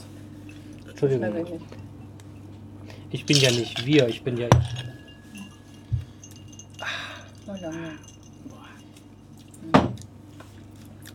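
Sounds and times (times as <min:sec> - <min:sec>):
speech: 0:01.0 - 0:02.0, 0:03.1 - 0:04.9, 0:07.5 - 0:08.2
ice cubes clinking against a glass: 0:03.2 - 0:09.2.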